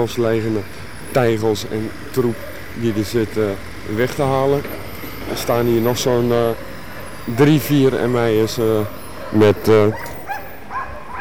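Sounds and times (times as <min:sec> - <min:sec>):
speech: 0:00.0 - 0:10.1
police dogs barking: 0:01.5 - 0:04.5, 0:05.2 - 0:11.1.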